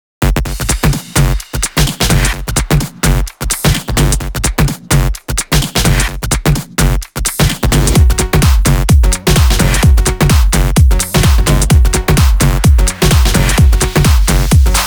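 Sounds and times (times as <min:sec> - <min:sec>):
128 BPM floor groove mix: 0:00.2 - 0:14.8.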